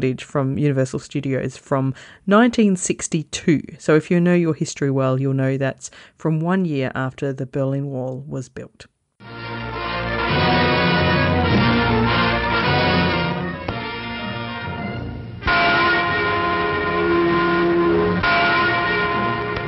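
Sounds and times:
speech: 0.0s - 9.4s, 10.3s - 10.8s
large deep bell tolling in West Berlin: 9.6s - 19.6s.

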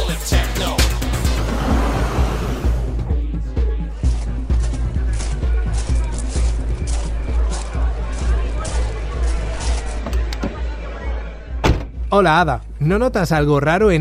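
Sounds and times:
low rumble of idling cars in a nightclub parking lot: 0.8s - 3.1s
indistinct murmur of voices: 3.0s - 11.8s
scattered knocks and door-like thuds: 11.6s - 12.0s
speech: 12.2s - 13.9s.

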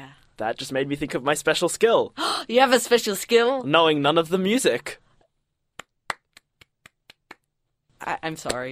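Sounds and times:
speech: 0.4s - 5.0s, 8.0s - 8.6s
person clapping slowly: 5.8s - 7.4s.

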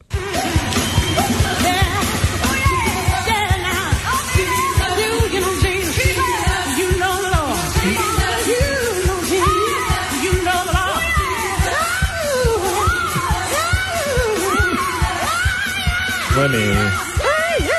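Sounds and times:
two women belting out a gospel duet: 0.0s - 17.7s.

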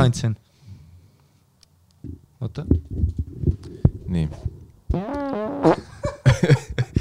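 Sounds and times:
speech: 0.0s - 0.4s, 2.0s - 3.2s, 4.1s - 6.7s
fart sound effect: 4.4s - 6.0s
laughter: 5.8s - 6.9s.

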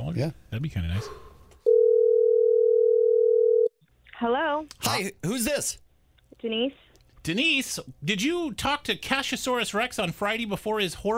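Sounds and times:
speech: 0.2s - 1.3s, 4.2s - 5.8s, 6.4s - 11.1s
telephone dial tone before a phone call: 1.7s - 3.7s.

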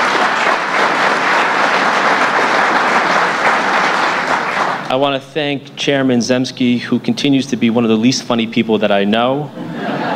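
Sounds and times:
large audience applauding: 0.0s - 5.0s
speech: 4.9s - 9.7s
laughter: 9.5s - 10.1s.

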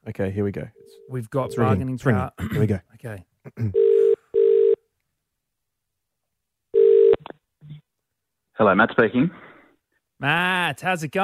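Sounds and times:
speech: 0.1s - 4.0s, 8.6s - 9.4s, 10.2s - 11.2s
phone call being placed with electronic ringing tones: 3.8s - 4.8s, 6.7s - 7.2s.

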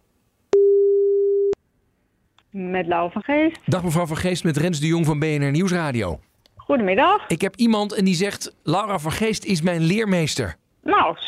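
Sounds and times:
telephone ringback tone of a call to a mobile number: 0.6s - 1.6s
speech: 2.6s - 11.2s.

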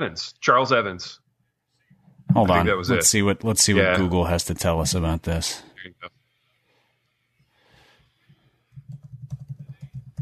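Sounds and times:
speech: 0.0s - 1.2s, 2.3s - 6.2s
soft breath: 6.4s - 8.7s
typing on a computer keyboard: 8.7s - 10.1s.

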